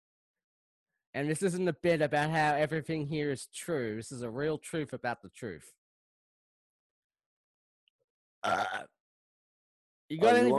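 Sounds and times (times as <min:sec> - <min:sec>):
speech: 0:01.2 - 0:05.8, 0:08.4 - 0:08.9, 0:10.1 - 0:10.5
person burping: 0:08.4 - 0:08.9.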